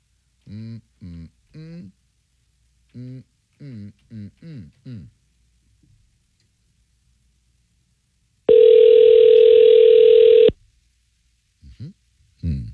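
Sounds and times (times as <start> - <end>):
short choppy voice-like bursts: 0.4 - 2.0, 2.9 - 5.2
telephone ringback tone: 8.5 - 10.5.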